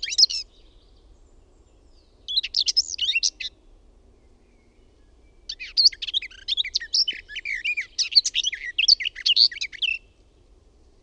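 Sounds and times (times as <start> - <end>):
garden warbler singing: 0.0 - 10.3
faint background noise: 0.0 - 11.0.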